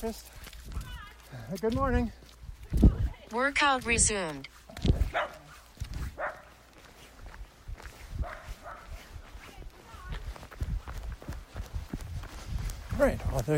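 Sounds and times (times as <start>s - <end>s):
speech: 0.0s - 5.3s, 13.0s - 13.5s
dachshund and schnauzer paws pattering on the ground: 0.0s - 13.5s
dachshund and schnauzer yipping and barking: 4.9s - 6.6s, 8.2s - 9.1s.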